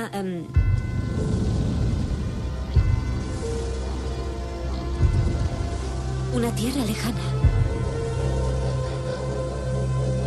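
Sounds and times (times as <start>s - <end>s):
speech: 0.0s - 1.4s, 6.3s - 7.5s
deep rumbles of thunder: 0.6s - 8.4s
storm rain: 0.6s - 10.2s.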